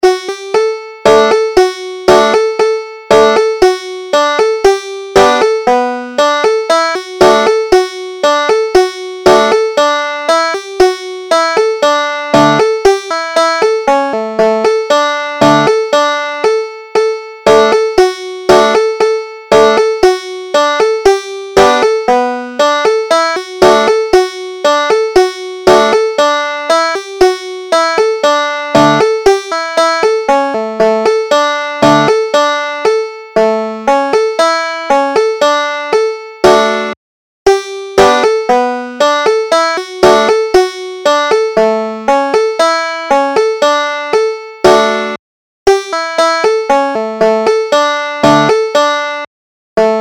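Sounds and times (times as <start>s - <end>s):
banjo playing: 0.0s - 49.9s.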